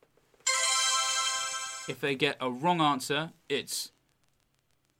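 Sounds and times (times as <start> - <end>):
bright sustained electronic chime: 0.5 - 2.0
speech: 1.9 - 4.0.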